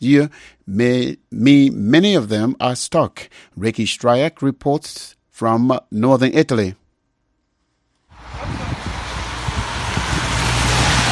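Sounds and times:
speech: 0.0 - 6.8
low engine rumble of passing vehicles: 8.1 - 11.1
tires hissing on wet mountain road pavement: 8.1 - 11.1.

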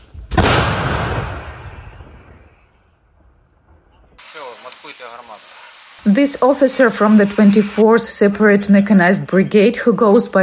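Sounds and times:
155mm Paladin howitzer firing in Ukraine: 0.3 - 3.9
speech: 4.9 - 10.4.

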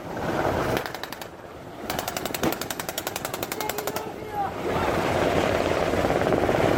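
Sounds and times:
wind roaring: 0.0 - 6.7
automatic gunfire bursts during maritime anti-terror drill: 1.9 - 4.2
water rushing: 3.4 - 6.7.

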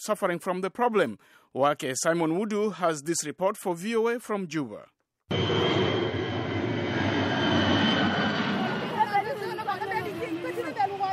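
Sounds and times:
speech: 0.0 - 5.9
heavy propeller cargo plane engine droning overhead during an airdrop: 5.3 - 11.1.

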